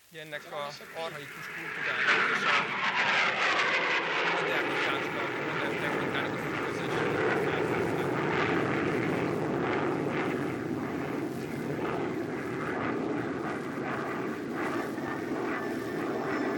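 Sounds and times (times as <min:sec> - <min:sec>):
speech: 0:00.1 - 0:07.5
airplane flying overhead: 0:00.3 - 0:16.5.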